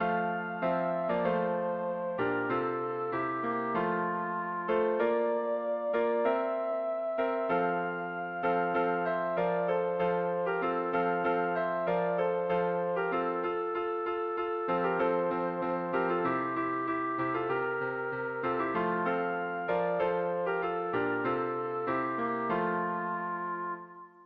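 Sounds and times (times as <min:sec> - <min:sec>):
clarinet playing a carol: 0:00.0 - 0:24.2.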